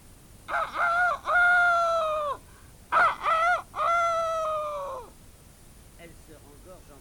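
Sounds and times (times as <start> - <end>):
young rooster crowing: 0.5 - 5.2.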